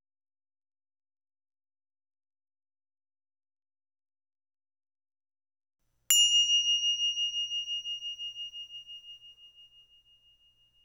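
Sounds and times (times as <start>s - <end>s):
meditation bell struck: 6.1s - 10.8s.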